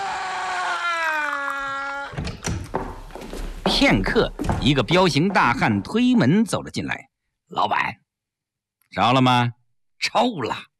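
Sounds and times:
eerie howling scream from next door: 0.0 - 2.2
thumps and knocks: 2.2 - 5.8
speech: 3.8 - 8.0, 8.9 - 10.7.

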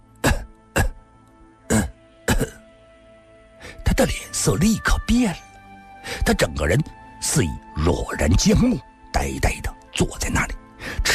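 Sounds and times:
harsh coughing outside a window: 0.2 - 1.0, 1.7 - 2.6
speech: 4.0 - 5.4, 6.3 - 10.6.

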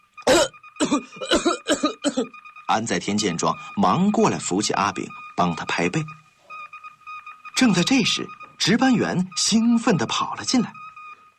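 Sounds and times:
person coughing violently after choking on tea: 0.3 - 2.3
speech: 0.9 - 6.2, 7.6 - 10.8.

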